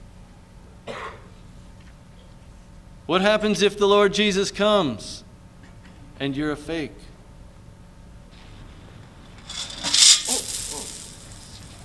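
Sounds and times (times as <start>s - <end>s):
speech: 3.1s - 5.2s, 6.2s - 7.1s
coins clattering and rattling: 9.2s - 11.8s.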